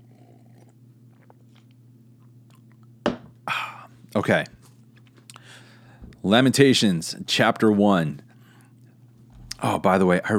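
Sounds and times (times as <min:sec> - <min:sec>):
person sipping coffee: 0:00.0 - 0:01.8
low steady hum: 0:00.0 - 0:10.3
speech: 0:04.2 - 0:04.6, 0:06.2 - 0:08.2, 0:09.6 - 0:10.3.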